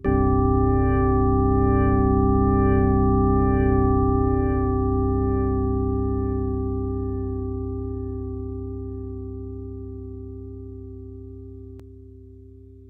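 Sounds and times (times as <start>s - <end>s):
organ pad: 0.1s - 7.9s.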